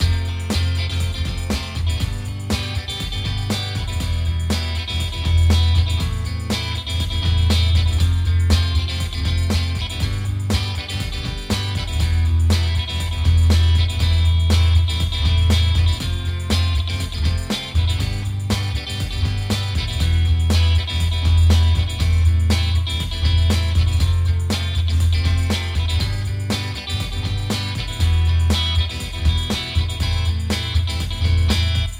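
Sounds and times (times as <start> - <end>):
middle live acoustic twang: 0.0 - 31.9.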